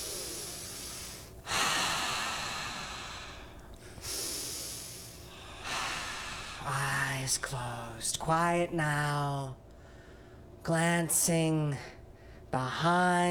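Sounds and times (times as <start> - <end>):
slow deep breathing close to the microphone: 0.0 - 7.0, 9.7 - 10.6
speech: 7.3 - 9.6, 10.6 - 11.9, 12.5 - 13.2.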